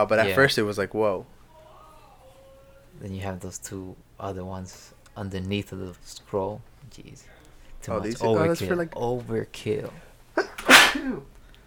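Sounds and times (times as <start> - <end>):
speech: 0.0 - 1.4, 3.0 - 10.1, 10.9 - 11.4
person sneezing: 10.4 - 11.3.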